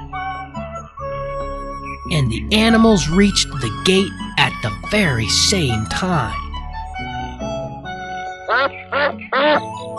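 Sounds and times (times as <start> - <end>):
speech: 2.1 - 6.4
duck quacking: 8.5 - 9.6.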